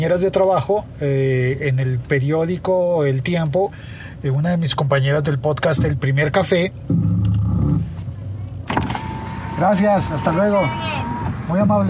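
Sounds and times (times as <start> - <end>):
speech: 0.0 - 7.1, 9.6 - 11.8
car engine humming while leaving by car: 0.0 - 11.8.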